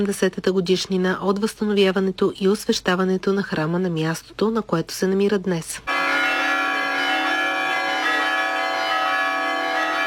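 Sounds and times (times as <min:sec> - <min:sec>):
speech: 0:00.0 - 0:06.0
church bells ringing: 0:05.9 - 0:10.0.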